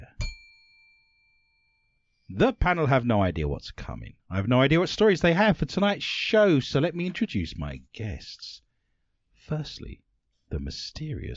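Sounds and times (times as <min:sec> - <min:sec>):
bell ringing: 0:00.1 - 0:02.3
speech: 0:02.4 - 0:08.6, 0:09.5 - 0:11.3.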